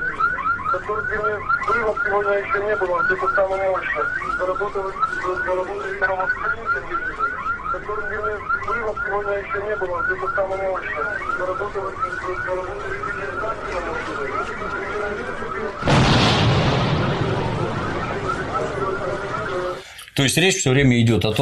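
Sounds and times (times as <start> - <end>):
car alarm wailing: 0.0 - 20.0
speech: 0.7 - 16.9, 18.9 - 21.4
loud explosion: 15.8 - 19.8.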